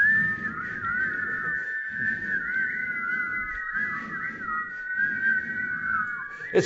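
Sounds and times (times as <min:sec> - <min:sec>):
audience at a Sunday service whistling together: 0:00.0 - 0:06.6.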